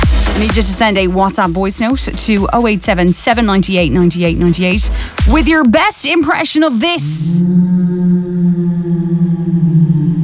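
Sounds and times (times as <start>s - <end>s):
speech: 0.4s - 8.6s
eerie drawn-out whale-like moan: 7.0s - 10.2s.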